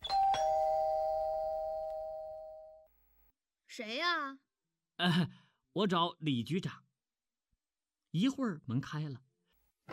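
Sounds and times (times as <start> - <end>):
house doorbell two-note ding-dong chime: 0.0 - 2.8
speech: 3.8 - 4.4, 5.0 - 6.8, 8.1 - 9.2.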